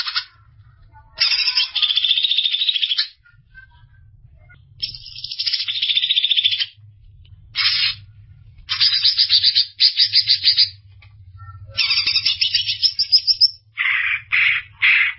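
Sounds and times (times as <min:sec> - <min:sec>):
soft low hum: 0:00.0 - 0:02.0, 0:03.1 - 0:13.8
Greater green leafbird song: 0:01.2 - 0:03.8, 0:04.8 - 0:06.8, 0:08.7 - 0:10.8, 0:11.4 - 0:15.1.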